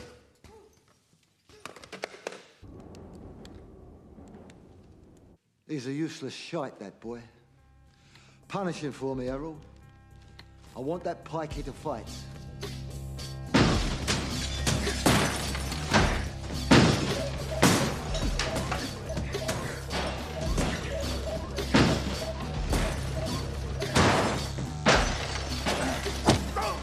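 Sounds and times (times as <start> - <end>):
speech: 5.7 - 7.4, 8.5 - 9.8, 10.8 - 12.7
arcade being smashed up with heavy thuds and crashes: 13.5 - 26.7.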